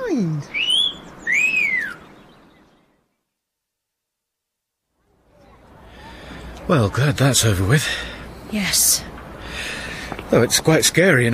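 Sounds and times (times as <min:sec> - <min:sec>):
faint room noise: 0:00.0 - 0:11.3
whistling garden gnome ornament whistle: 0:00.5 - 0:02.2
speech: 0:06.7 - 0:11.3.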